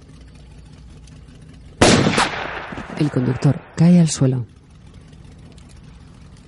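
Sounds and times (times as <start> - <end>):
gunshot: 1.8 - 3.8
speech: 3.0 - 4.6.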